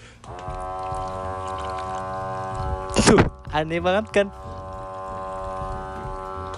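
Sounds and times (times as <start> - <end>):
drinking water machine at a boarding house dispensing into a glass, whining drone: 0.0 - 6.5
speech: 3.1 - 4.6.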